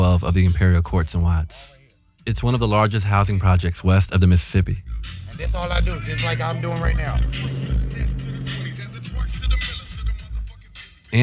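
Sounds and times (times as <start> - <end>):
speech: 0.2 - 9.7
pickup truck engine rumble inside the cab: 4.8 - 10.7.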